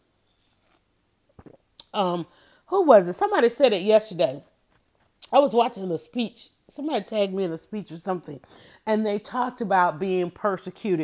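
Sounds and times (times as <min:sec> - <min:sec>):
sipping lemonade from a glass: 0:00.3 - 0:01.9
wet mouth clicks like a swallow: 0:01.3 - 0:02.0
speech: 0:02.0 - 0:04.5, 0:05.3 - 0:11.0.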